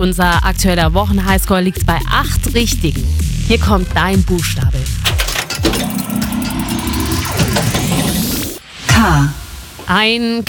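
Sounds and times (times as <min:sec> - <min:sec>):
speech: 0:00.0 - 0:05.1, 0:09.0 - 0:10.4
car engine low drone while driving: 0:05.0 - 0:08.6.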